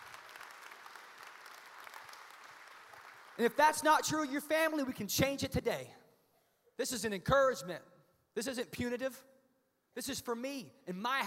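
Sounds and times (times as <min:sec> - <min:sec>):
audience applause heard from a distance: 0:00.0 - 0:03.4
speech: 0:03.4 - 0:06.0, 0:06.8 - 0:09.3, 0:10.0 - 0:11.2.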